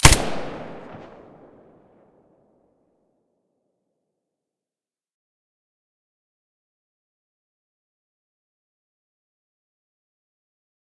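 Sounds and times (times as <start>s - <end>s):
silenced weapon shots: 0.0s - 1.4s.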